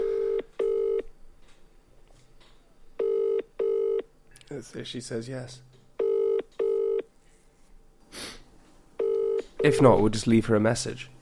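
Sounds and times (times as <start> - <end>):
outgoing phone call ringback tone: 0.0 - 1.1, 3.0 - 4.0, 6.0 - 7.1, 9.0 - 9.8
faint hiss: 0.0 - 11.2
speech: 4.6 - 5.8, 9.6 - 11.2.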